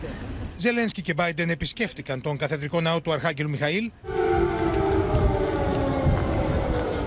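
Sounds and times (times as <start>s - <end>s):
speech: 0.6s - 4.4s
air raid siren wailing: 4.0s - 7.0s
low rumbling background: 4.0s - 7.0s.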